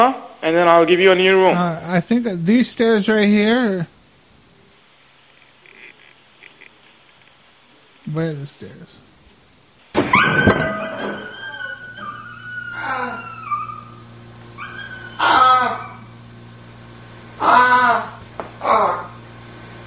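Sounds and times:
speech: 0.0s - 4.0s, 8.1s - 9.1s, 10.0s - 11.2s
dog yelping after being hurt in a fall: 10.1s - 16.2s, 17.4s - 19.2s
dog whimpering and whining: 10.2s - 14.0s, 14.6s - 16.1s.

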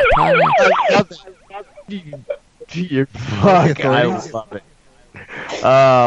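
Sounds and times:
toy police car siren wailing in high warbling sweeps: 0.0s - 1.8s
laughter: 0.0s - 4.6s, 5.2s - 6.0s
speech: 0.2s - 1.3s, 1.9s - 4.7s, 5.6s - 6.0s.

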